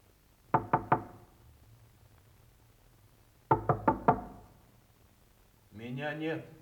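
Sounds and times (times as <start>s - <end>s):
knocking on a dormitory room door: 0.5s - 1.3s, 3.5s - 4.5s
speech: 6.0s - 6.6s.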